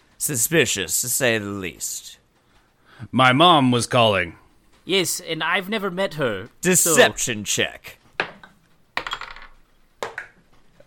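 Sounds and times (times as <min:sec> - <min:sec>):
speech: 0:00.2 - 0:02.2, 0:03.0 - 0:08.0
die clattering onto a hard table: 0:08.2 - 0:10.4.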